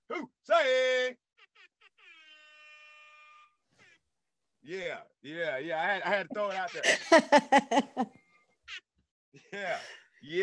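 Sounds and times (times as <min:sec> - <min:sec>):
loud buzzer blast with a brassy tone: 0:01.4 - 0:03.6
speech: 0:04.7 - 0:08.2, 0:09.6 - 0:10.4
laughter: 0:05.8 - 0:08.2.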